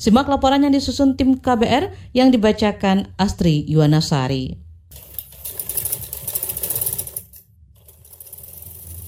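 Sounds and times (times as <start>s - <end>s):
speech: 0.0s - 4.6s
sewing machine running: 4.9s - 9.0s.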